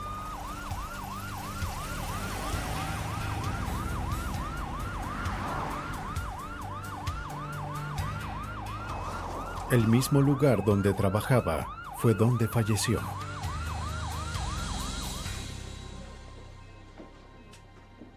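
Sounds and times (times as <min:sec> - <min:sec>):
low rumble of traffic in Hilo: 0:00.0 - 0:12.0
ambulance siren wailing in Hilo: 0:00.0 - 0:16.2
speech: 0:09.7 - 0:13.3.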